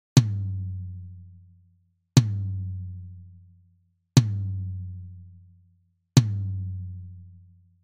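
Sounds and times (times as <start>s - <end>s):
tom drum: 0.2s - 0.7s, 2.2s - 2.7s, 4.2s - 4.7s, 6.2s - 6.7s.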